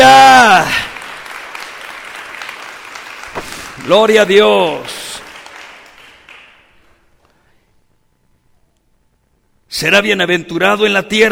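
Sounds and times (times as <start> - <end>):
audience applauding in praise of God: 0.0 - 7.2
speech: 3.8 - 5.0, 9.8 - 11.2.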